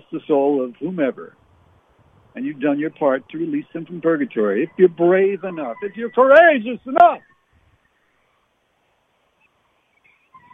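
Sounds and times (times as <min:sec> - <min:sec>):
outdoor hiss: 0:00.0 - 0:05.3, 0:06.1 - 0:10.5
speech: 0:00.1 - 0:01.4, 0:02.4 - 0:07.3
coyotes howling and yipping in a park behind a backyard: 0:04.2 - 0:08.5.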